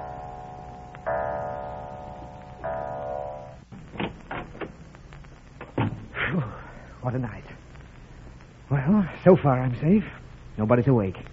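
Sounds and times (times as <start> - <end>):
clock in a house chiming the hour: 0.0 - 3.7
speech: 7.0 - 7.6, 8.8 - 11.3.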